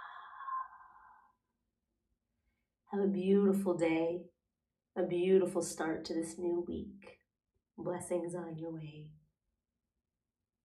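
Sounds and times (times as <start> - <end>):
slow open-mouthed exhale with the jaw dropped: 0.0 - 1.3
speech: 2.9 - 4.3, 5.0 - 7.2, 7.8 - 9.2.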